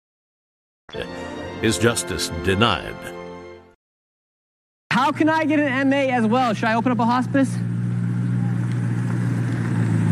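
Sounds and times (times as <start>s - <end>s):
speech: 0.9s - 3.2s, 5.0s - 7.7s
brand-new BMW M8 Competition car engine drone while being driven out: 5.4s - 10.0s.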